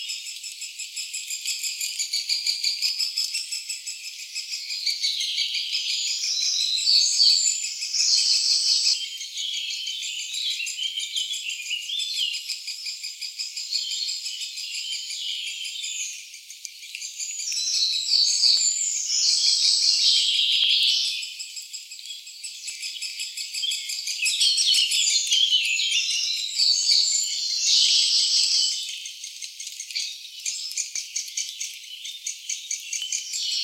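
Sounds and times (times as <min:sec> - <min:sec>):
juvenile great spotted woodpecker: 0:00.4 - 0:33.6.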